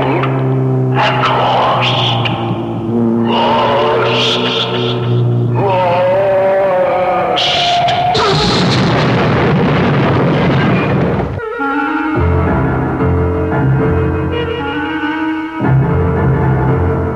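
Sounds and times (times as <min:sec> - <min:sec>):
car engine whining and straining: 0:00.0 - 0:17.1
loud crash of a car going over a canyon edge: 0:07.5 - 0:11.4
long rumbling explosion of a car plunging over a canyon edge: 0:07.8 - 0:11.4.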